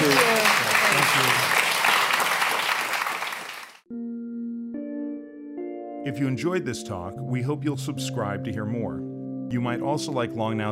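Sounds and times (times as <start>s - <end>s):
audience applause at a live talk event: 0.0s - 3.8s
speech: 6.0s - 10.7s.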